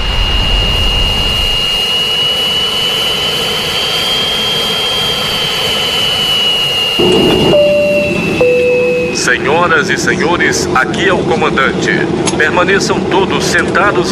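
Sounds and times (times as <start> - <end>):
Boeing jet aircraft taking off: 0.0 - 10.8
speech: 9.3 - 14.1.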